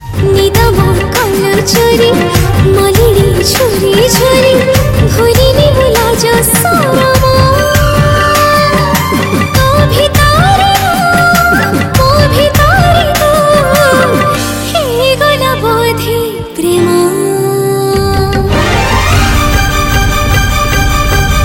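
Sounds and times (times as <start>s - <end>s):
Odia romantic song: 0.0s - 21.4s.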